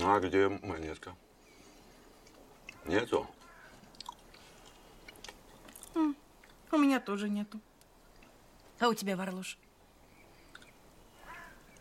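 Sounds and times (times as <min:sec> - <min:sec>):
speech: 0:00.0 - 0:01.3, 0:02.8 - 0:03.4, 0:06.0 - 0:07.7, 0:08.8 - 0:09.6
chewing pie: 0:02.1 - 0:02.8, 0:03.4 - 0:06.7, 0:10.4 - 0:10.8.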